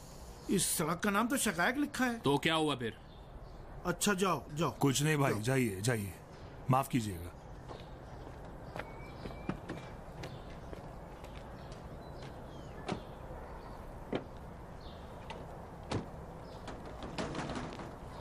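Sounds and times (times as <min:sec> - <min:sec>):
speech: 0:00.5 - 0:03.1, 0:03.8 - 0:07.4
banging on a door: 0:15.9 - 0:18.2.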